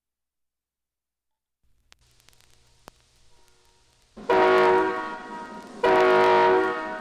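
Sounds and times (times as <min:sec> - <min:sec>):
passing train horn blasts: 0:04.2 - 0:06.9.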